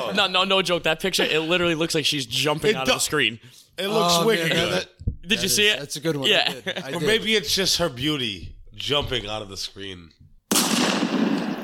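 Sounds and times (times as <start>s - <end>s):
speech: 0.1s - 10.2s
laughter: 6.2s - 7.8s
gunshot sound effect: 10.5s - 11.6s.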